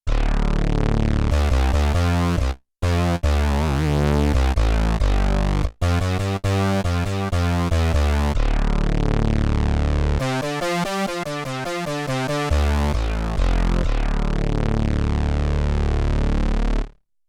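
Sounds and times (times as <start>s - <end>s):
mono bass synth: 0.0s - 17.0s.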